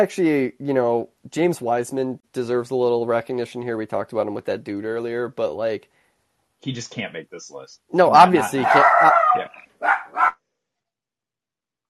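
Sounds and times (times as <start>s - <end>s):
speech: 0.0s - 6.0s, 6.6s - 9.9s
dog barking excitedly: 8.6s - 10.4s.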